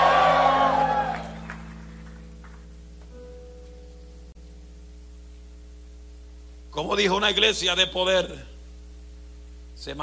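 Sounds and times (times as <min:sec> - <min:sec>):
audience shouting in praise: 0:00.0 - 0:01.6
speech: 0:06.8 - 0:08.5, 0:09.8 - 0:10.0.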